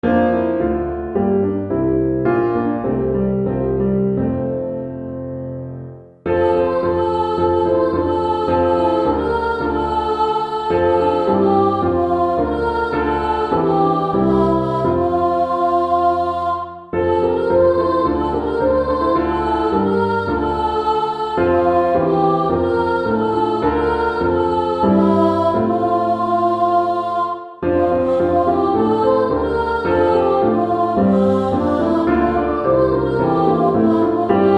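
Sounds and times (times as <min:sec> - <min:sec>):
piano: 0:00.0 - 0:34.5
children's chorus singing: 0:06.3 - 0:34.5.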